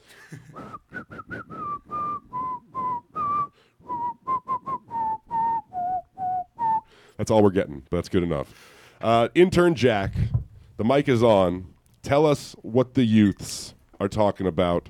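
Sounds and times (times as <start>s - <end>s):
speech: 0.3s - 0.8s, 7.2s - 14.8s
person whistling a bouncy tune: 0.5s - 7.0s.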